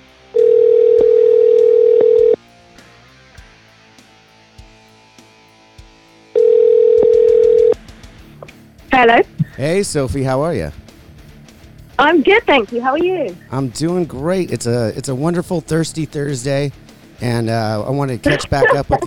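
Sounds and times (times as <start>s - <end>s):
telephone ring tone: 0.4s - 2.4s, 6.4s - 7.8s
speech: 9.0s - 10.8s, 12.0s - 19.0s
laughter: 18.3s - 19.0s.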